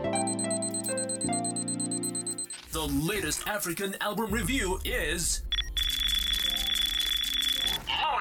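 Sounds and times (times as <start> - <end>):
sustained electronic tones shifting pitch in steps: 0.2 - 3.5, 5.3 - 8.0
clock ticking: 0.2 - 8.0
speech: 2.8 - 5.5
low hum: 4.3 - 7.7.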